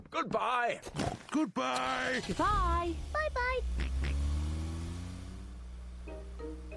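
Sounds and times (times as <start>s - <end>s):
speech: 0.1s - 3.8s
old repaired car rumbling and pulling away: 2.0s - 6.7s.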